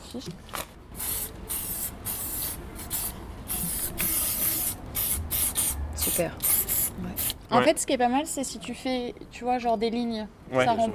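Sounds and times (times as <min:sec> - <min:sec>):
speech: 0:00.1 - 0:00.6, 0:06.0 - 0:10.9
aerosol spray paint can hissing: 0:01.0 - 0:07.4.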